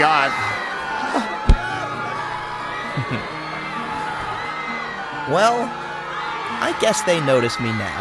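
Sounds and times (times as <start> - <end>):
crowd yelling and shouting: 0.0 - 7.9
laughter: 0.0 - 7.9
sharp thump: 1.5 - 1.7
speech: 3.1 - 3.3, 5.3 - 5.8, 6.6 - 7.9.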